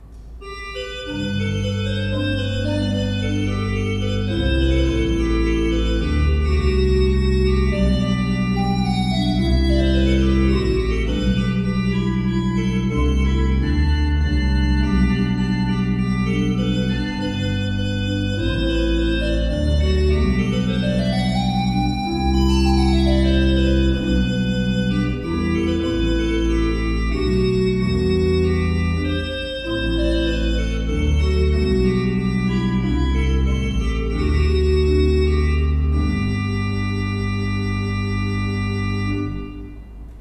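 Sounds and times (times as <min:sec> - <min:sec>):
used Bosch Raupach organ: 0:00.0 - 0:40.1.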